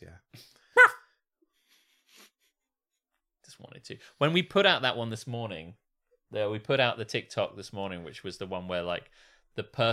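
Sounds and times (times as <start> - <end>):
dog barking: 0.8 - 1.1
speech: 3.7 - 9.9.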